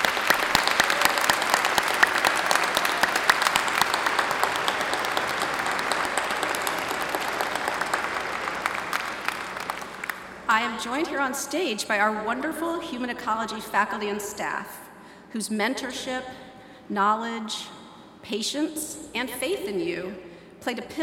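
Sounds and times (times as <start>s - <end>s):
large audience applauding: 0.0s - 10.5s
speech: 10.7s - 21.0s.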